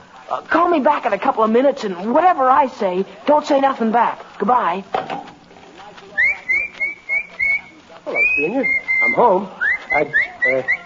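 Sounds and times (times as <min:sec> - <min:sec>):
faint murmur: 0:00.0 - 0:10.8
speech: 0:00.3 - 0:05.3, 0:08.1 - 0:10.8
person whistling in short shrill bursts as if calling a dog: 0:06.2 - 0:10.8.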